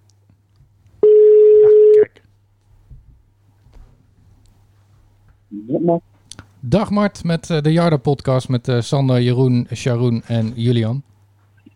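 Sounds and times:
telephone line ringing as a call is placed: 1.0s - 2.1s
speech: 5.6s - 11.1s.

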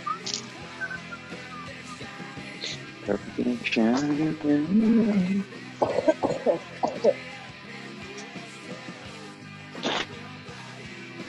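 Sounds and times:
speech: 3.1s - 7.3s
laughter: 4.6s - 7.3s
person coughing: 5.8s - 7.1s.

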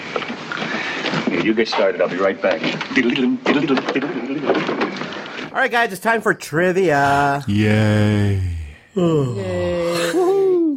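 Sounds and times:
speech: 1.4s - 10.3s
person giving a long loud voiced yawn: 7.0s - 10.7s.

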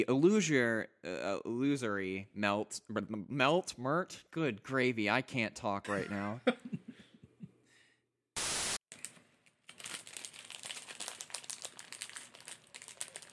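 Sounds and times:
speech: 0.0s - 6.7s
laughter: 5.9s - 7.0s
static hiss: 8.4s - 8.8s
paper crinkling and crumpling: 8.9s - 13.3s.

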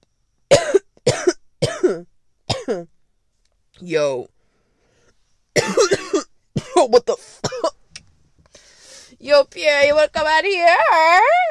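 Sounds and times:
person coughing: 0.5s - 2.9s, 5.6s - 7.8s
speech: 2.7s - 2.9s, 3.8s - 4.3s, 6.8s - 7.7s, 9.2s - 11.4s.

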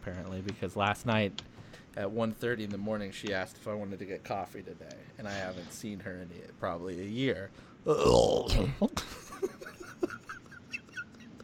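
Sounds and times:
speech: 0.0s - 9.1s
loud low rumbling burp: 7.9s - 8.8s
laughter: 9.0s - 11.4s.

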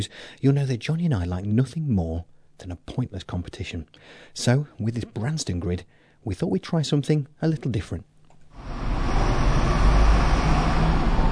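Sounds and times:
speech: 0.0s - 8.8s
low rumble of bus engines in a bus station: 8.6s - 11.3s
passing traffic at a bus station: 8.6s - 11.3s.

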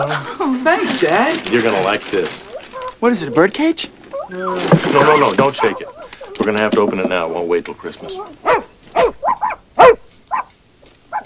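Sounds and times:
speech: 0.0s - 9.2s
puppy barking and yipping: 2.5s - 3.5s, 4.1s - 6.5s, 7.8s - 11.2s.

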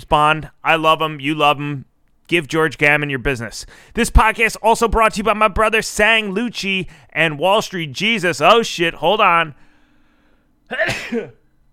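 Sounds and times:
speech: 0.1s - 9.7s, 10.7s - 11.4s
person sneezing: 10.7s - 11.4s.

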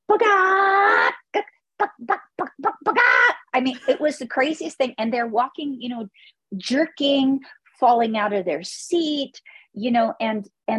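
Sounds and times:
person imitating a barking dog: 0.1s - 3.5s
speech: 3.6s - 10.7s.

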